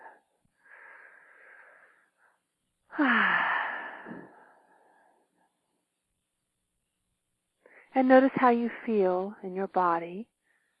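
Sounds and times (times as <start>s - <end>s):
deep breath in a guided exercise: 0.0s - 5.6s
speech: 3.0s - 3.4s, 8.0s - 10.3s.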